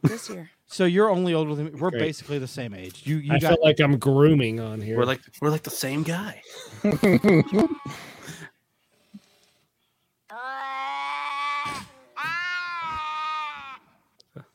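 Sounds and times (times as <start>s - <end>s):
speech: 0.1s - 8.2s
laughter: 6.6s - 8.5s
cats yowling while mating: 10.3s - 13.8s.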